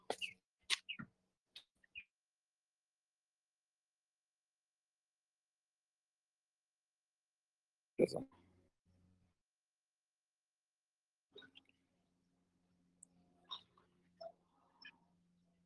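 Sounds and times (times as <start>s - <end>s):
bird chirps outdoors: 0.1s - 1.0s, 13.4s - 15.1s.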